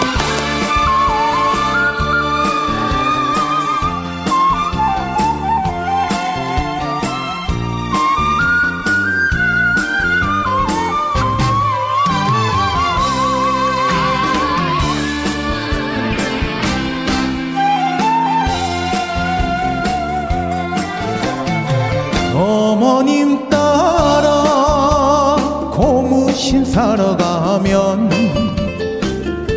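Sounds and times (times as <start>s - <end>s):
upbeat instrumental music intro with whistle-like melody: 0.0s - 29.5s.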